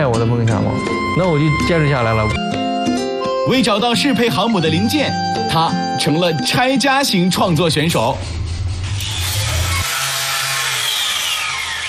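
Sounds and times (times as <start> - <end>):
speech: 0.2 - 2.6, 3.4 - 8.4
power tool grinding: 8.3 - 11.8.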